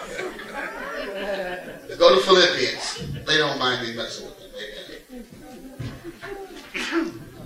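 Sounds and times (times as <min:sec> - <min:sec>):
laughter: 0:00.0 - 0:07.4
speech: 0:02.0 - 0:04.7
person sneezing: 0:06.7 - 0:07.2.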